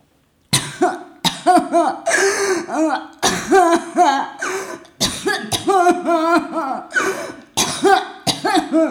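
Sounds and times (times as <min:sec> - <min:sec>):
person coughing harshly: 0:00.6 - 0:08.8
person sobbing and wailing: 0:00.8 - 0:04.9, 0:05.5 - 0:08.8
person gasping: 0:01.8 - 0:03.2, 0:04.3 - 0:05.0, 0:05.6 - 0:08.1.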